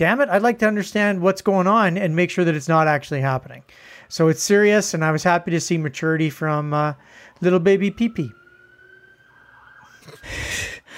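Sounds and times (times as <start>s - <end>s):
speech: 0.0s - 8.4s, 10.2s - 10.9s
siren wailing outside: 5.3s - 10.9s.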